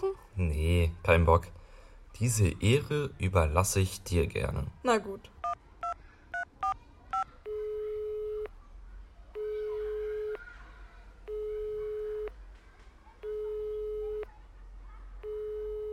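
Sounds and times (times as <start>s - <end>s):
speech: 0.0s - 1.6s, 2.2s - 5.4s
keypad dialing tones: 5.4s - 8.5s, 11.3s - 12.4s, 13.2s - 14.3s, 15.2s - 15.9s
ringing tone of an unanswered phone call: 5.4s - 8.5s, 9.4s - 10.5s, 11.3s - 12.4s, 13.2s - 14.3s, 15.2s - 15.9s.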